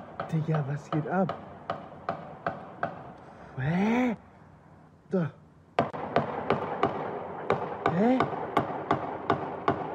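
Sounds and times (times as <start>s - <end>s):
speech: 0.3s - 1.8s, 3.6s - 4.3s, 5.1s - 5.4s
person calling out: 3.6s - 4.2s, 7.9s - 8.3s
sharp gunshots at a Jehovah's Witnesses centre in Hamburg: 5.8s - 9.9s.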